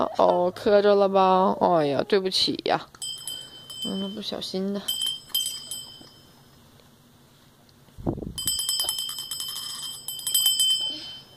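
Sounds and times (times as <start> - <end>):
speech: 0.0 - 3.0, 3.8 - 5.0
small bell shaken and ringing: 2.9 - 6.6, 8.4 - 11.3.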